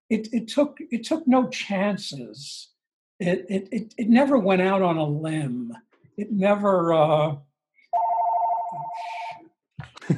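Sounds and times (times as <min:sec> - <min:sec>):
speech: 0:00.1 - 0:08.0
telephone ringing from a spam call with a warbling trill: 0:08.0 - 0:09.2
laughter: 0:09.8 - 0:10.1.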